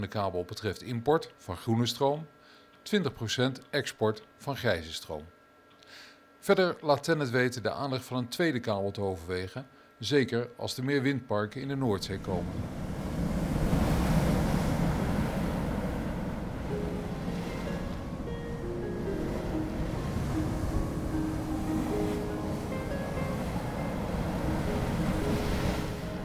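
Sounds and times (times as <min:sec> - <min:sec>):
speech: 0:00.0 - 0:12.8
sea surf and breaking waves at the Orkney Islands: 0:12.0 - 0:26.2
gusting wind buffeting the microphone: 0:12.2 - 0:26.2.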